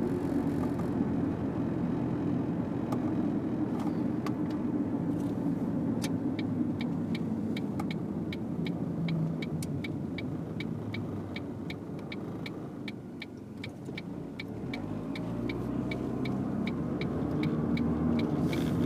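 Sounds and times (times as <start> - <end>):
car engine idling with low rumble: 0.0 - 18.8
sharp ticking clicks: 6.0 - 18.8.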